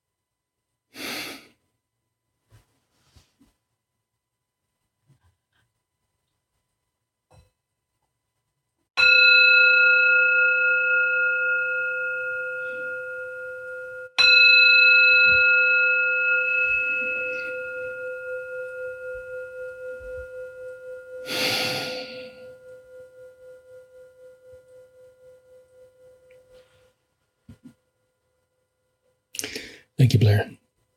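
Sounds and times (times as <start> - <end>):
singing bowl struck and ringing: 9.0 - 27.0
speech: 30.3 - 30.6.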